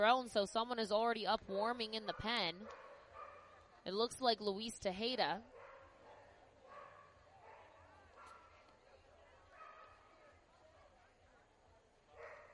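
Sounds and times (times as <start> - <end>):
speech: 0.0 - 2.8, 3.8 - 5.5
dogs barking and yipping in a ballpark crowd: 2.1 - 3.7, 5.5 - 8.6, 9.5 - 10.0, 12.2 - 12.5.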